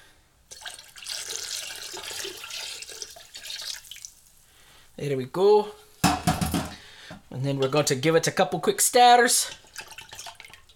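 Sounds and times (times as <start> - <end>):
peach schnapps pouring in a splashy stream: 0.5 - 4.4, 7.6 - 10.7
speech: 5.0 - 6.3, 7.3 - 9.6.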